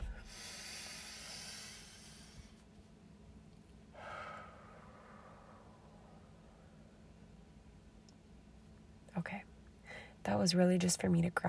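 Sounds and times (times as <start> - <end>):
slow deep breath inhaling: 0.0 - 2.6, 3.9 - 6.9
speech: 9.2 - 9.5, 10.3 - 11.4.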